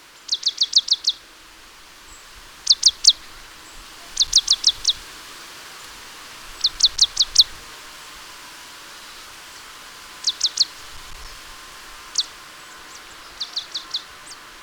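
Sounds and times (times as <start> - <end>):
marsh tit Poecile palustris calling: 0.2 - 1.2, 2.1 - 5.1, 5.7 - 7.6, 9.0 - 14.6.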